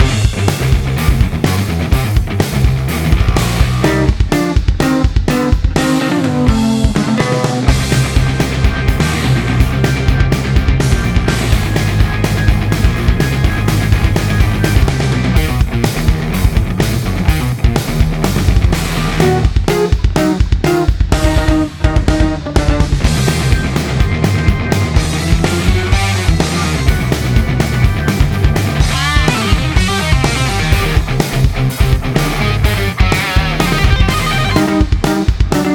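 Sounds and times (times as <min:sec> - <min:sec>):
bass guitar for boss battle music: 0:00.0 - 0:35.7.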